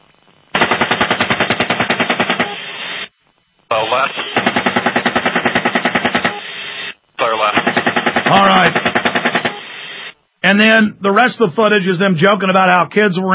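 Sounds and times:
rapid gunfire bursts from an aircraft-mounted gun: 0:00.5 - 0:02.8, 0:04.2 - 0:06.6, 0:07.4 - 0:10.0
speech: 0:03.7 - 0:04.9, 0:07.2 - 0:08.9, 0:10.4 - 0:13.3.

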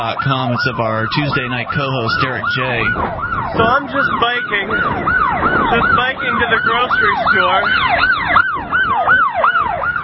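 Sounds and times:
speech: 0:00.0 - 0:08.7
emergency vehicle siren wailing in rapid up-and-down sweeps: 0:00.0 - 0:10.0
low road rumble: 0:00.0 - 0:10.0.

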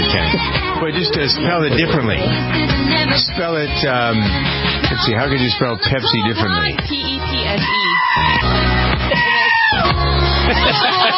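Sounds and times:
speech: 0:00.9 - 0:09.2, 0:09.9 - 0:11.1
laughter: 0:08.9 - 0:11.1
goat screaming: 0:09.1 - 0:10.0.

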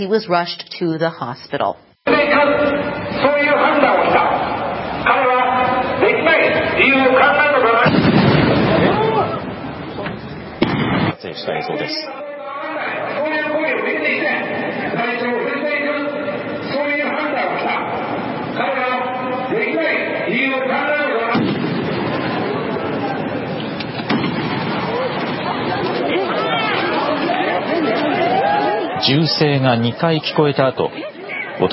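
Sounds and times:
speech: 0:00.0 - 0:04.3, 0:11.2 - 0:12.2, 0:29.0 - 0:31.7
outdoor crowd murmuring: 0:02.1 - 0:31.7
gunshots: 0:07.8 - 0:09.3, 0:10.6 - 0:11.2, 0:21.3 - 0:22.6, 0:23.8 - 0:25.8.

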